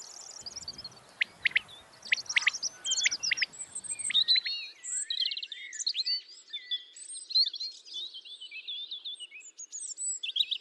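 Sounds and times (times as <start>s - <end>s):
light background hiss: 0.0s - 4.7s
birdsong with chirps and trills: 0.0s - 10.6s.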